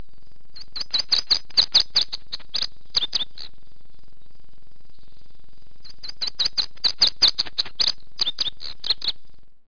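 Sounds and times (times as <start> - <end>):
bunting giving rapid high chipping notes: 0.6 - 3.5, 5.9 - 9.2.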